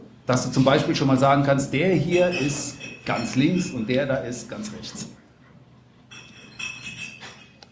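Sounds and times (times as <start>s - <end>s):
speech: 0.3s - 5.2s
wine glasses clinking as they are set down at a wine tasting: 1.6s - 5.1s, 6.1s - 7.6s.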